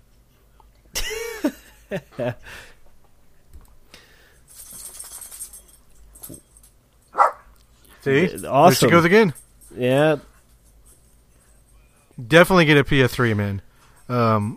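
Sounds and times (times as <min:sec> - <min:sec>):
laughter: 0:01.0 - 0:02.5
speech: 0:01.4 - 0:02.8, 0:08.0 - 0:10.3, 0:12.2 - 0:14.5
dog barking: 0:07.1 - 0:07.5.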